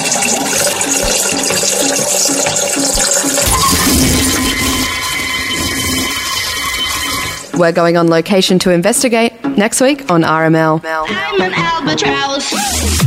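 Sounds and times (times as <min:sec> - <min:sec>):
very loud toilet flush: 0:00.0 - 0:08.0
speech: 0:07.6 - 0:13.0.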